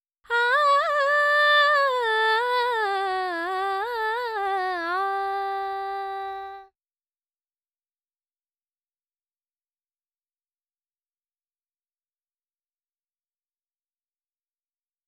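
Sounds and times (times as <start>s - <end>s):
dry female vocals: 0.3s - 6.7s.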